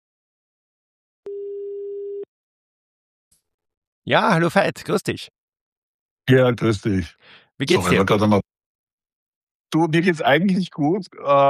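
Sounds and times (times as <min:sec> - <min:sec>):
steady telephone ringback tone: 0:01.3 - 0:02.3
speech: 0:04.0 - 0:05.4, 0:06.3 - 0:08.5, 0:09.7 - 0:11.4.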